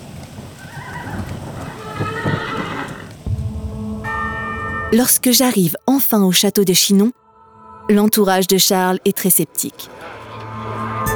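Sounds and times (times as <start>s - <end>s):
horse hooves clattering: 0.0s - 3.5s
horse whinnying: 0.6s - 3.2s
bell tolling: 3.3s - 5.6s
speech: 4.9s - 7.2s, 7.9s - 10.2s.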